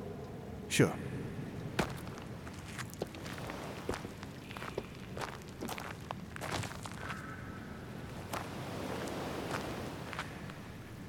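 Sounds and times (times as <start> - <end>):
low rushing wind: 0.0 - 11.0
speech: 0.7 - 1.1
footsteps on stone steps of an old lighthouse: 1.8 - 7.2.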